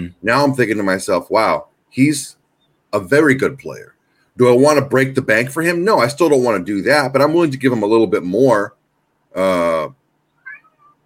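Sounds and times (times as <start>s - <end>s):
speech: 0.0s - 10.0s
cat chirping trill: 10.2s - 11.0s
cat meowing: 10.4s - 11.0s.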